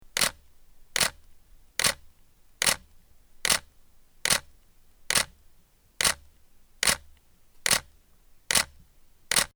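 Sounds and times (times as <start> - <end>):
Canon EOS 1D Mark III camera shutter: 0.2 - 0.4, 1.0 - 1.2, 1.8 - 2.0, 4.3 - 4.5, 5.1 - 5.3, 6.0 - 6.2, 6.8 - 7.0, 7.6 - 7.9, 8.5 - 8.7, 9.3 - 9.5.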